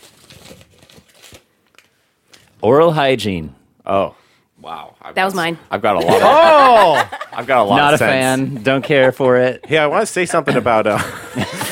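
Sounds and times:
crumpled paper slip being unfolded: 0.0 - 2.5
speech: 2.6 - 11.6
laughter: 6.0 - 11.7.

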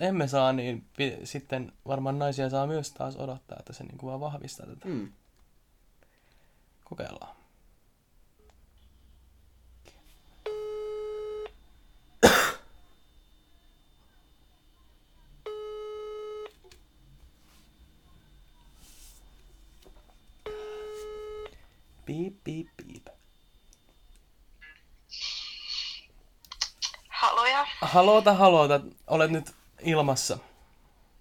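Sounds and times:
speech: 0.0 - 5.2, 6.9 - 7.4, 27.9 - 30.5
telephone ringback tone while placing a call: 10.5 - 11.6, 15.4 - 16.5, 20.4 - 21.6
voice answering over the telephone line: 26.9 - 28.3.

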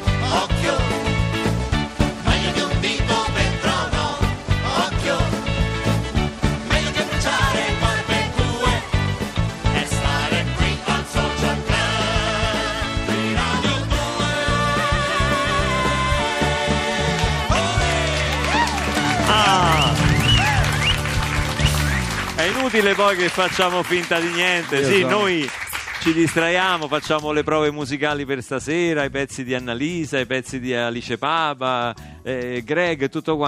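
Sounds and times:
radio show theme jingle with layered instruments and driving beat: 0.0 - 25.4
speech: 22.8 - 33.4.

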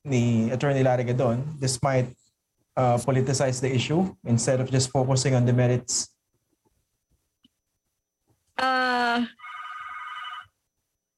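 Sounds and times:
speech: 0.0 - 2.2, 2.8 - 6.2, 8.6 - 9.4
phone ringing with an incoming call: 9.3 - 10.6.

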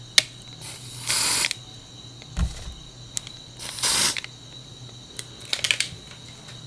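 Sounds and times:
deodorant spray can clicks and rattles from handling: 0.2 - 1.6, 3.1 - 4.3, 5.2 - 6.0
short sharp hissing deodorant sprays: 0.6 - 1.6, 3.6 - 4.3.

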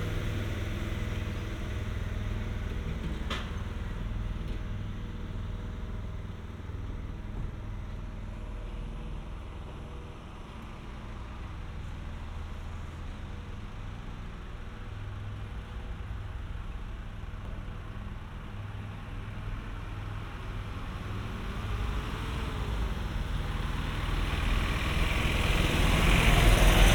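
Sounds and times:
idling engine or machinery running during pothole repairs: 0.0 - 26.9.

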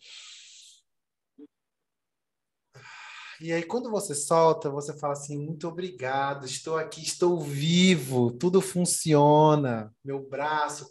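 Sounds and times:
deep airy breath drawn in as a breathing exercise: 0.0 - 0.8, 2.8 - 3.4
speech: 3.4 - 10.9.

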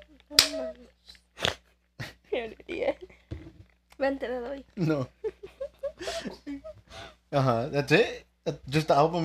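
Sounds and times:
hand slapping against a face in a facepalm: 0.3 - 0.7
speech: 0.3 - 1.2, 4.0 - 5.2, 7.3 - 9.2.

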